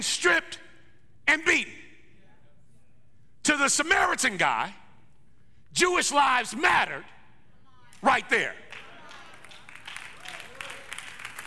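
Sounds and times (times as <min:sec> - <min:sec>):
speech: 0:00.0 - 0:00.6, 0:01.3 - 0:01.8, 0:03.4 - 0:04.8, 0:05.7 - 0:07.2, 0:08.0 - 0:08.6
small audience clapping lightly: 0:08.7 - 0:11.4.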